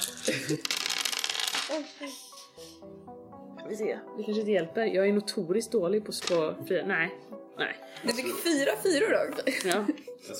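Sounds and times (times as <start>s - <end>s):
handful of dice rattling: 0.0s - 2.0s
speech: 0.3s - 1.0s, 1.7s - 10.3s.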